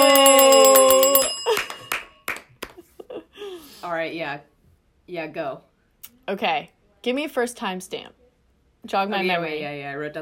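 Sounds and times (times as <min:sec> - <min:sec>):
bright bell ringing with rapid strikes: 0:00.0 - 0:02.2
sharp claps or knocks: 0:01.4 - 0:02.8
speech: 0:04.0 - 0:04.5, 0:05.1 - 0:08.2, 0:08.8 - 0:10.2.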